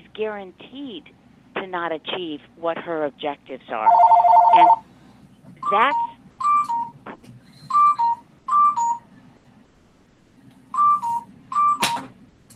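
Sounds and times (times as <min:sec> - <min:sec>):
speech: 0:00.2 - 0:04.9, 0:05.7 - 0:06.1
telephone ringing with electronic two-tone chirps: 0:03.8 - 0:04.8, 0:05.6 - 0:07.0, 0:07.7 - 0:09.0, 0:10.8 - 0:12.0.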